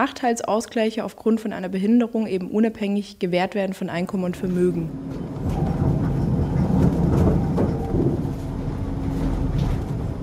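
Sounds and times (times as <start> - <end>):
speech: 0.0 - 5.6
trams and trains rumbling at a railway station in Erfurt: 4.4 - 10.2.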